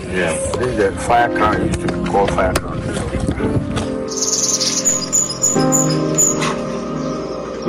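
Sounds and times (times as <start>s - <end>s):
speech: 0.1s - 4.8s, 5.5s - 6.6s
northern red bishop calls in Ghana: 4.1s - 7.6s.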